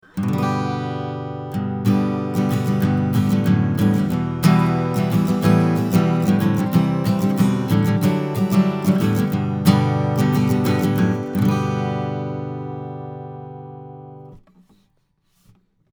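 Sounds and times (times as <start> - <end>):
acoustic guitar recorded with Schoeps CMC6MK2S microphone at 20cm: 0.0 - 15.6.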